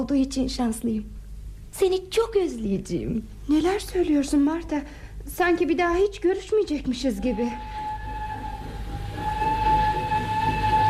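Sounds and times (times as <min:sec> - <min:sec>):
speech: 0:00.0 - 0:07.8
freight train rumbling past: 0:07.3 - 0:10.8.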